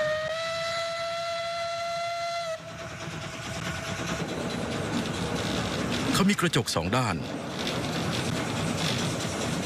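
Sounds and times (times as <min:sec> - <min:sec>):
train whistle blast: 0:00.0 - 0:02.7
rumble and clatter of a moving train: 0:00.0 - 0:09.6
speech: 0:06.2 - 0:07.4.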